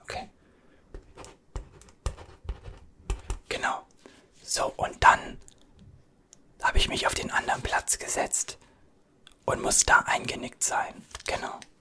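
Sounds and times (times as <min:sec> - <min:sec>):
quiet whispering: 0:00.0 - 0:00.4, 0:03.5 - 0:05.8, 0:06.6 - 0:11.7
pen strokes and soft tapping while writing something down: 0:01.0 - 0:03.4
speech: 0:07.9 - 0:08.6, 0:09.5 - 0:11.7.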